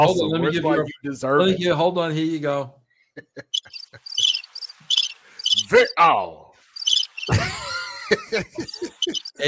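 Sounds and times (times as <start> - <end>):
speech: 0.0 - 4.2, 5.6 - 6.4, 7.2 - 9.4
crickets chirping: 3.5 - 5.8, 6.6 - 7.3, 9.0 - 9.3
laughter: 7.3 - 9.4.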